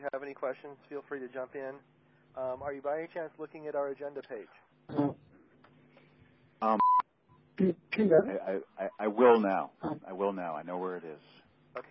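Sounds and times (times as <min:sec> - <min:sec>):
speech: 0:00.0 - 0:05.2, 0:06.6 - 0:06.9, 0:07.6 - 0:11.9
electronic phone beep as someone joins a conference call: 0:06.8 - 0:07.0.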